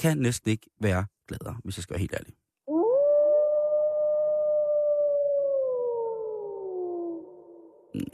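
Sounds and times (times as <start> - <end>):
speech: 0.0 - 2.4, 7.9 - 8.1
wolf howling: 2.7 - 7.9.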